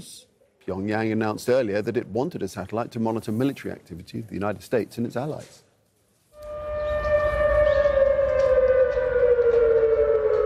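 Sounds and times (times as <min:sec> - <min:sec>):
speech: 0:00.0 - 0:05.6
civil defense air raid siren wailing in Seoul South Korea after a satellite launch: 0:06.4 - 0:10.4.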